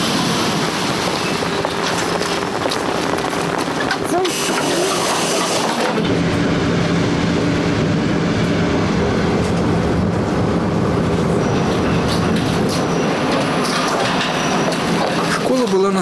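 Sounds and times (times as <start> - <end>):
electric commuter train rumbling: 0.0 - 16.0
train wheel clatter: 0.5 - 6.2, 10.9 - 16.0.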